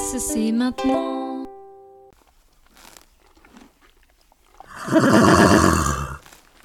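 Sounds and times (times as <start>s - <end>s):
speech: 0.2s - 1.2s, 5.0s - 5.7s
horse neighing with a wavering whinny: 4.6s - 6.2s.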